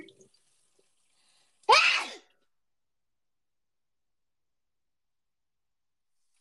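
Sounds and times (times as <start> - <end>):
person sneezing: 1.7 - 2.3.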